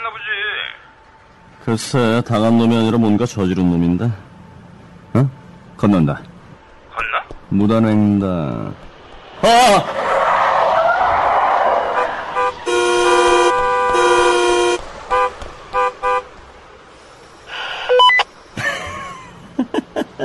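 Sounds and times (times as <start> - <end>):
traffic noise: 0.0 - 20.2
speech: 1.6 - 4.2, 5.2 - 6.3, 7.5 - 10.0
car tires screeching: 8.5 - 17.7
long blaring car horn blasts and short honks: 12.0 - 16.4
laughter: 18.6 - 20.2.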